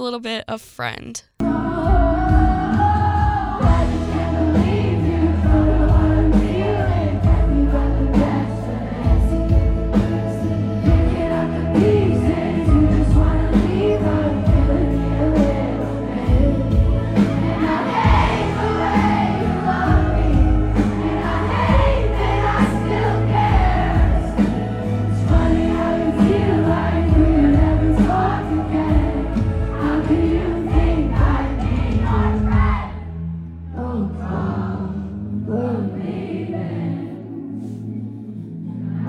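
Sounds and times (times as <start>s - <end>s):
speech: 0.0s - 1.3s
live concert song: 0.0s - 39.0s
big audience singing along: 1.4s - 37.9s, 38.6s - 39.0s.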